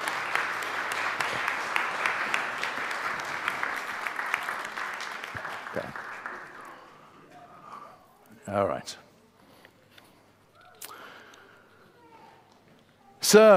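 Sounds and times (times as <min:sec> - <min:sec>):
crowd clapping: 0:00.0 - 0:07.2
speech: 0:08.5 - 0:09.0, 0:13.3 - 0:13.5.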